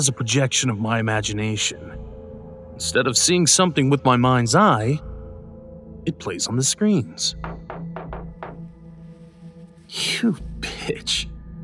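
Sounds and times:
speech: 0:00.0 - 0:02.1, 0:02.8 - 0:05.2, 0:06.0 - 0:07.7, 0:09.9 - 0:11.3
firm knocking on a door: 0:07.4 - 0:08.8.

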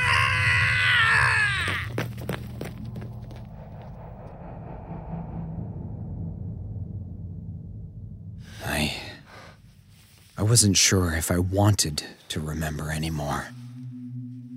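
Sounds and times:
person uttering a harsh bestial shriek in a hallway: 0:00.0 - 0:01.9
low lingering rumble: 0:01.6 - 0:11.8, 0:12.4 - 0:14.5
speech: 0:10.5 - 0:13.6.

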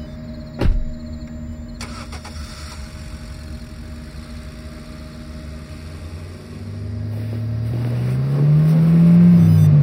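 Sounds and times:
thump: 0:00.6 - 0:01.0
car engine idling and revving as car backs out of a parking lot: 0:01.8 - 0:09.8.

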